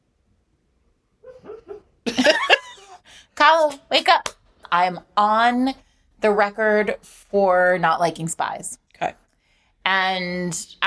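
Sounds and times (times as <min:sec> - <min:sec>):
dog whimpering during a bad dream: 0:01.2 - 0:01.9
speech: 0:03.5 - 0:09.2, 0:09.8 - 0:10.8.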